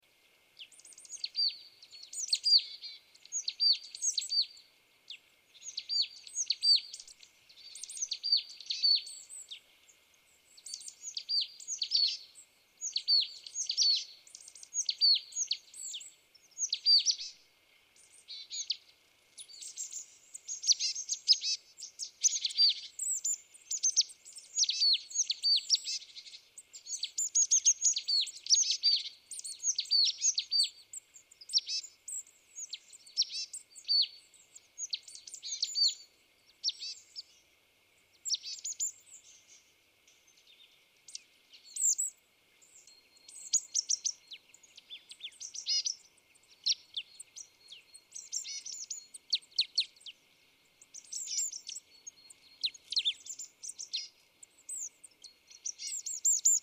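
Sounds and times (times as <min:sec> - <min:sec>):
marsh tit singing: 0:00.6 - 0:17.4, 0:18.0 - 0:37.4, 0:38.1 - 0:56.6.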